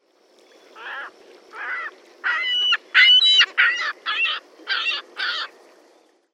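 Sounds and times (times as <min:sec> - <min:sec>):
Ring-billed Gull long call in Prewitt Colorado: 0:00.8 - 0:05.5.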